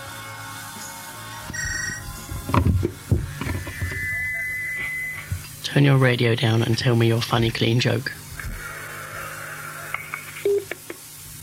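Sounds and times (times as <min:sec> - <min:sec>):
steady low hum on a telephone line: 0:00.1 - 0:05.7
short electronic telephone line beeps: 0:03.8 - 0:05.3
speech: 0:05.8 - 0:08.2.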